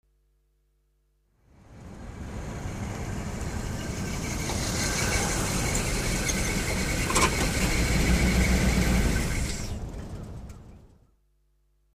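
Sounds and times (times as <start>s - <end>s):
car arriving: 1.4s - 11.1s
traffic: 1.4s - 11.2s.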